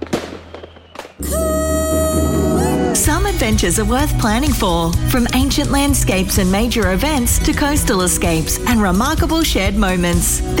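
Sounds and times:
fireworks exploding at a Territory Day celebration: 0.0 - 1.6
fireworks crackling roar with a steady whistling tone: 0.0 - 2.1
speech: 3.1 - 10.5.

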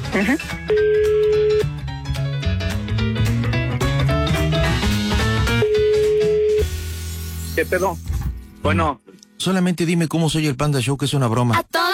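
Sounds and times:
loud busy music: 0.0 - 8.3
speech: 0.2 - 1.5, 7.6 - 11.8
telephone ringback tone through the line: 5.6 - 6.7.

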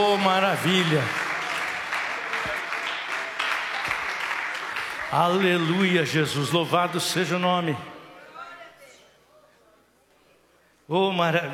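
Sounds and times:
church audience clapping: 0.0 - 6.4
speech: 0.1 - 1.2, 5.1 - 7.9, 10.9 - 11.5.

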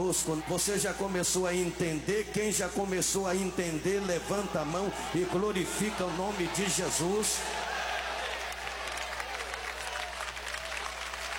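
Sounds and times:
speech: 0.0 - 7.8
cheering voices: 0.0 - 11.3
large crowd applauding: 4.4 - 11.3.

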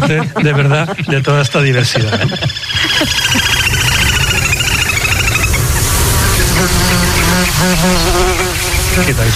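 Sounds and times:
laughter: 0.0 - 3.8
speech: 0.1 - 4.1, 6.6 - 9.3
busy wash of other buzzing: 1.9 - 9.3
mosquitoes buzzing around the microphone: 2.7 - 9.3.

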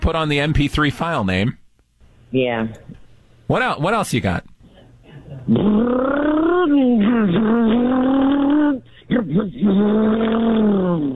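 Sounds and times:
speech: 0.0 - 1.6, 2.3 - 4.5, 5.4 - 11.1
person vocally imitating a car engine revving: 5.5 - 11.1.

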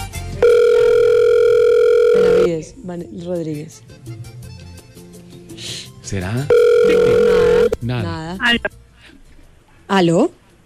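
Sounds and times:
electronic ringback tone from an outgoing phone call: 0.4 - 2.5, 6.5 - 7.8
speech: 2.9 - 4.3, 6.1 - 8.8, 9.9 - 10.4.

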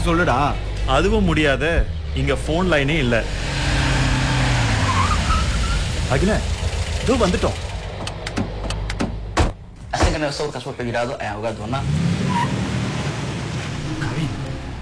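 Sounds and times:
speech: 0.0 - 3.4, 6.1 - 6.5, 7.1 - 7.7, 10.2 - 12.5
car engine idling: 0.0 - 14.8
sharp clicks and knocks: 7.3 - 10.5.

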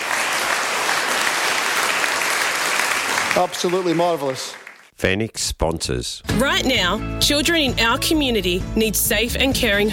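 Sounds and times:
audience applause: 0.0 - 4.9
speech: 3.4 - 9.9.

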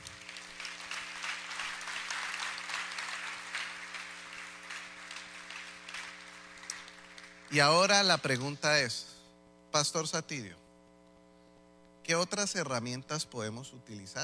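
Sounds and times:
dense audience applause: 0.0 - 7.6
speech: 7.5 - 9.1, 9.7 - 10.6, 12.1 - 14.2.

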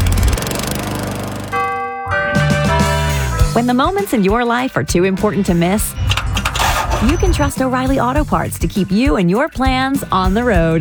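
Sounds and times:
Gravely lawn mower engine chugging: 0.0 - 10.8
ringing sustained tones: 1.0 - 8.2
bright musical jingle: 1.5 - 8.5
speech: 3.6 - 6.1, 7.0 - 10.8.

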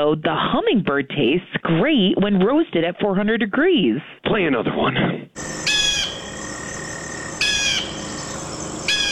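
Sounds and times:
speech: 0.0 - 5.7
recorded bald eagle chattering call: 5.4 - 9.0.

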